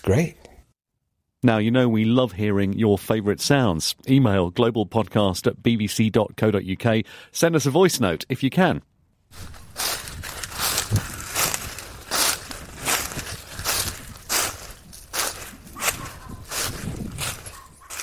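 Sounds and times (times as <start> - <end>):
speech: 0.0 - 0.5, 1.4 - 9.9
footsteps walking over dry crispy leaves: 9.3 - 18.0.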